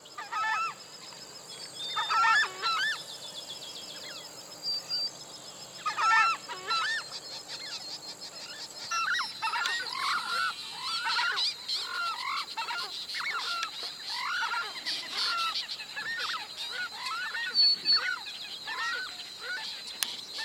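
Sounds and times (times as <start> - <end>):
southern screamer calling: 1.6 - 3.1, 5.8 - 20.4.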